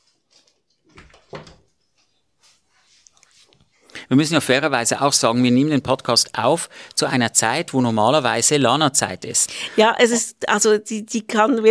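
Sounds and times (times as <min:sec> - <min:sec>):
dog padding across the studio floor: 0:00.8 - 0:03.6
studio door creaking open: 0:00.9 - 0:01.8
speech: 0:04.1 - 0:11.6.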